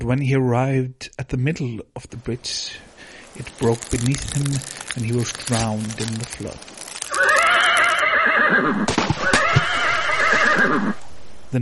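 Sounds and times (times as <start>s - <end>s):
speech: 0.0s - 6.8s, 8.2s - 9.6s, 10.6s - 11.6s
horse whinnying on a bridge of ice over a stream: 7.1s - 11.0s.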